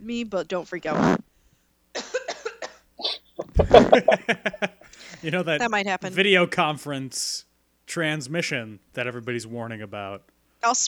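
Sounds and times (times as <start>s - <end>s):
speech: 0.0s - 1.3s, 3.0s - 10.8s
person coughing: 2.0s - 4.2s
laughter: 3.4s - 5.3s.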